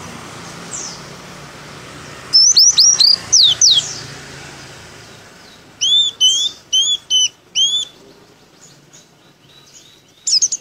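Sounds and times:
Pleci dakun white-eye from Merapi singing open-beaked: 2.3 - 3.9, 5.8 - 8.0, 10.2 - 10.5.

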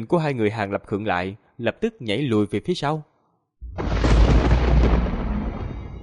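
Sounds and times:
speech: 0.0 - 3.1
thunder rumbling continuously across the sky in a storm: 3.6 - 6.0.

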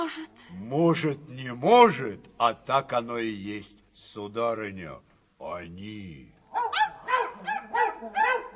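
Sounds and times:
speech: 0.1 - 6.3
dogs barking: 6.5 - 8.5.

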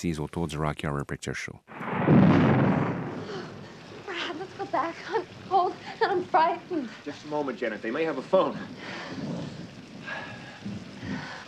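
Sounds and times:
speech: 0.0 - 2.9, 4.7 - 9.4
thunder from a thunderstorm scene in a film: 1.7 - 7.0, 7.7 - 11.4
rain from a thunderstorm scene in a film: 1.7 - 11.4.

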